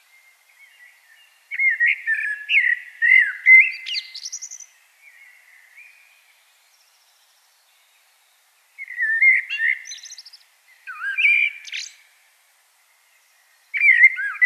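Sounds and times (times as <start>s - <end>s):
common blackbird singing: 0.1s - 6.2s, 8.8s - 12.1s, 12.9s - 14.4s.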